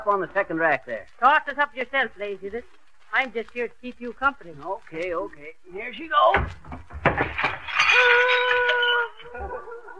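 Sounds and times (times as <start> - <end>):
speech: 0.0 - 8.5
cut glass punch bowl crashing and breaking: 7.1 - 9.4.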